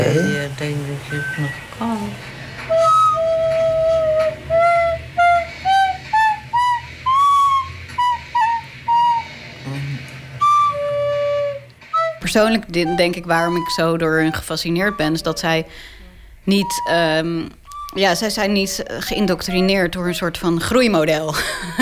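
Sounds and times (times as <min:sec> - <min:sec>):
laughter: 0:00.0 - 0:00.5, 0:21.1 - 0:21.8
speech: 0:00.2 - 0:02.4, 0:12.4 - 0:15.9, 0:16.5 - 0:21.8
whistle blown in short clear pitched notes: 0:02.7 - 0:09.3, 0:10.4 - 0:15.3, 0:16.6 - 0:17.0, 0:17.7 - 0:18.0.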